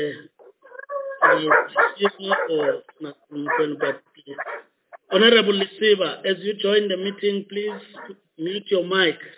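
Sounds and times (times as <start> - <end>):
speech: 0.0 - 0.3, 1.3 - 4.4, 5.1 - 9.3
dog barking: 0.4 - 5.8, 7.1 - 8.2.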